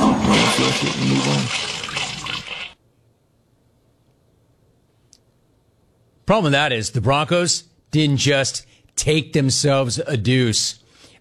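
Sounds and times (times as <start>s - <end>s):
toilet flushing: 0.0s - 2.8s
speech: 6.3s - 11.2s.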